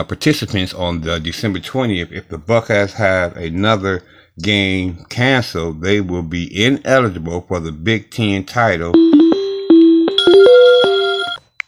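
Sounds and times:
speech: 0.0s - 9.2s
mobile phone ringtone melody: 9.0s - 11.4s.

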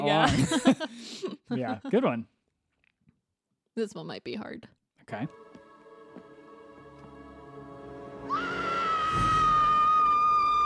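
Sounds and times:
speech: 0.0s - 2.4s, 3.8s - 5.4s
woman screaming after finding a body: 8.2s - 10.6s.

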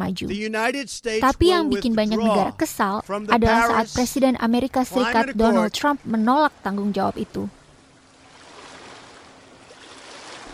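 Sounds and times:
speech: 0.0s - 7.6s
constant rushing water of the open sea heard from aboard a boat: 4.9s - 10.5s.

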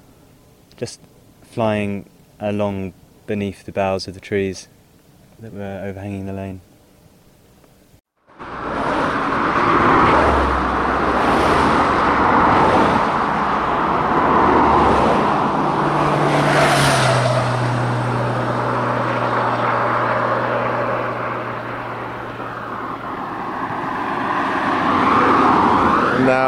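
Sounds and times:
speech: 0.8s - 4.8s, 5.4s - 6.7s
heavy traffic on a busy main road: 8.2s - 26.4s
larger trucks rumbling: 8.3s - 26.4s.

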